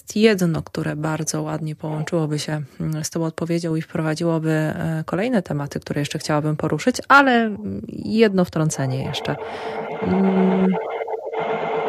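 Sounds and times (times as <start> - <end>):
speech: 0.1 - 10.9
printer electrical interference buzzing hum on a radio broadcast: 8.7 - 11.8
radio broadcast hiss and crackle: 8.8 - 11.8.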